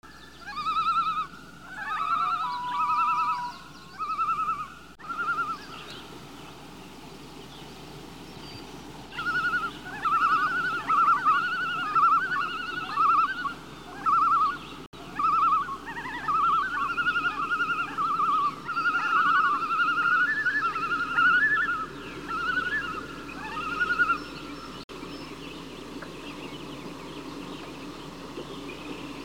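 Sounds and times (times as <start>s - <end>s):
birds: 0.0s - 29.2s
loon calling: 0.4s - 6.0s, 9.1s - 24.8s.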